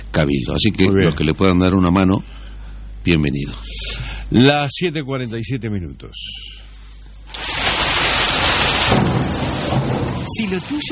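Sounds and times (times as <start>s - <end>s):
speech: 0.2s - 2.4s, 3.0s - 6.6s, 9.8s - 10.8s
heavy rain pouring: 7.3s - 10.8s.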